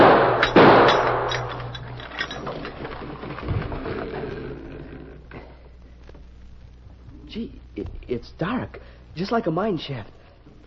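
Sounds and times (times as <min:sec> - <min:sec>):
gunshot fired to blow off a lock: 0:00.0 - 0:01.3
speech: 0:08.2 - 0:10.2.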